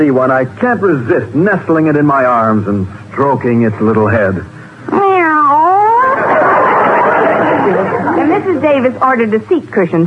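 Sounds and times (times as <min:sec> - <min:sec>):
speech: 0:00.0 - 0:05.4, 0:08.4 - 0:10.0
cat meowing and yowling: 0:04.9 - 0:06.2
laughter: 0:06.0 - 0:08.7.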